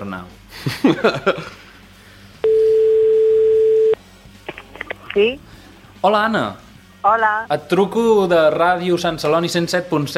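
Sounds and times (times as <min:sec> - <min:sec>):
speech: 0:00.0 - 0:01.6, 0:05.2 - 0:10.1
laughter: 0:00.6 - 0:01.8
ringback tone of an outgoing telephone call: 0:02.4 - 0:04.0.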